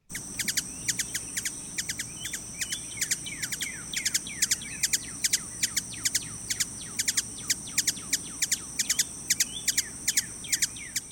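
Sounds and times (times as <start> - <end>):
low ambient hum: 0.0 - 11.1
ruby-throated hummingbird calls: 0.0 - 11.1.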